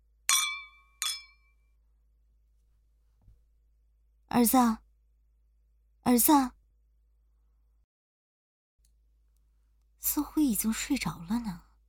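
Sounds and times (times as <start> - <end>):
glasses clinking in a celebratory drinking toast: 0.3 - 1.5
speech: 4.3 - 4.8, 6.0 - 6.6, 10.1 - 11.6.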